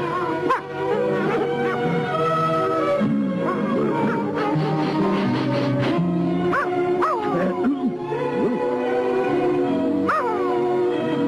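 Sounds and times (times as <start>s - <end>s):
music: 0.0s - 11.2s
puppy yipping and barking: 6.5s - 7.4s, 10.1s - 10.4s.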